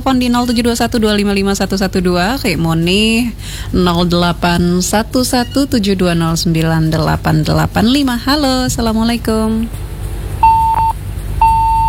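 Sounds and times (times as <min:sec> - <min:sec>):
speech: 0:00.1 - 0:09.9
disconnected phone line beeps on a call-in show: 0:10.4 - 0:11.8.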